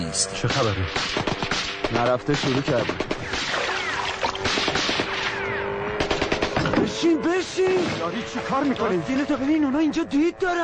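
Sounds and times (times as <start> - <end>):
speech: 0.1 - 3.6, 6.8 - 10.6
gunfire during a shootout on the water around a boat among reeds: 0.4 - 7.0.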